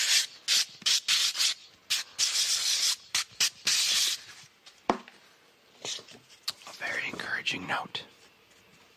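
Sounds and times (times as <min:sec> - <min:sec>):
sandpaper rubbing: 0:00.0 - 0:04.4
speech: 0:07.5 - 0:08.1.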